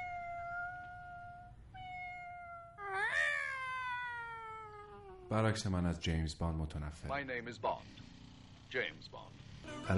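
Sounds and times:
cat meowing: 0.0 - 5.3
speech: 5.3 - 9.9.

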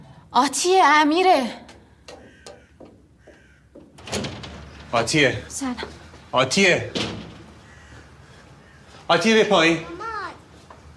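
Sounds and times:
speech: 0.3 - 1.6, 4.9 - 7.1, 9.1 - 9.9
door being opened with soft clunks and rattles: 2.1 - 7.9.

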